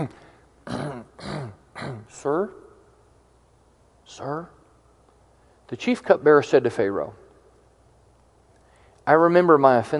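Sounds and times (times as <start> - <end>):
speech: 0.0 - 0.2, 2.2 - 2.6, 4.1 - 4.6, 5.7 - 7.2, 9.1 - 9.9
person performing theatrical throat clearing: 0.0 - 2.2.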